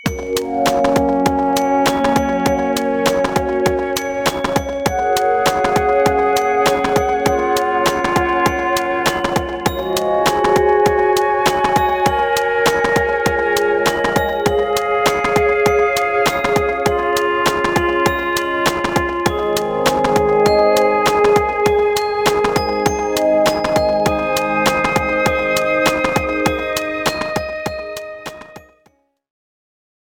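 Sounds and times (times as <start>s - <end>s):
joyful glockenspiel beat: 0.0s - 28.9s.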